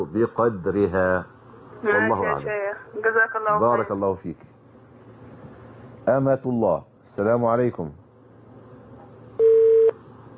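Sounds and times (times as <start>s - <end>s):
speech: 0.0s - 4.5s, 6.1s - 8.0s
telephone busy tone after a dropped call: 9.4s - 9.9s.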